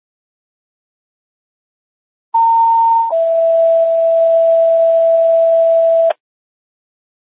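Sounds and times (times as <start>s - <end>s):
radio dispatch test tone: 2.4s - 6.2s.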